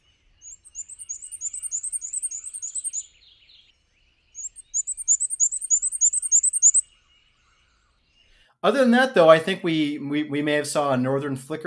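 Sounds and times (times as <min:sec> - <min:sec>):
pair of black-and-white warblers singing on a hiking trail: 0:00.0 - 0:03.7, 0:04.3 - 0:08.3
speech: 0:08.6 - 0:11.6.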